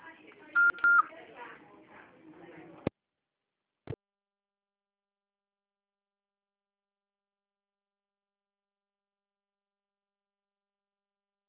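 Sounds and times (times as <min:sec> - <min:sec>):
answering machine beep: 0:00.6 - 0:01.1.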